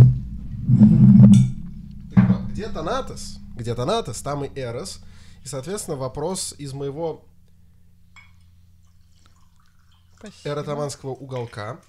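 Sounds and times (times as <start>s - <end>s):
steady low hum: 0.0s - 11.8s
speech: 2.6s - 7.3s, 10.2s - 11.8s
short clink of a glass: 8.1s - 10.2s.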